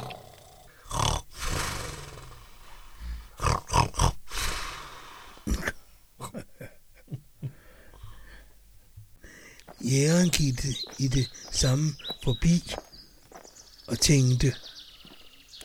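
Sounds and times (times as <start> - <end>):
loud snoring: 0.0 - 5.6
speech: 9.9 - 12.9, 13.9 - 14.7.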